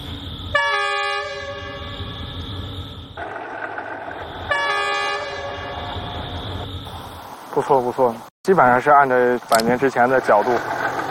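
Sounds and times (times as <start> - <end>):
S2 line passenger train passing over bridge: 0.0 - 11.0
passenger train horn long blasts: 0.5 - 2.1, 4.4 - 6.3
speech: 7.6 - 10.8.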